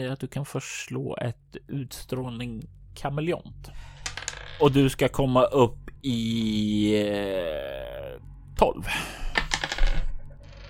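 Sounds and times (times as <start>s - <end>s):
speech: 0.0s - 3.9s, 4.6s - 9.3s
die clattering across a hard tabletop: 4.0s - 4.8s, 9.3s - 10.6s.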